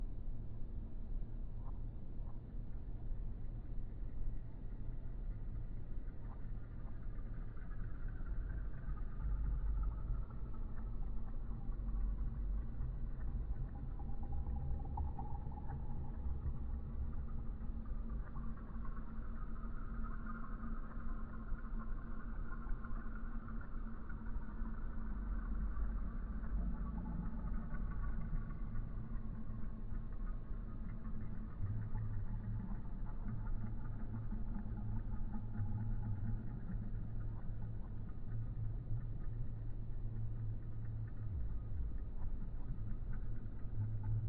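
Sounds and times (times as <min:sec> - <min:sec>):
ambient ambience loop: 0:00.0 - 0:44.2.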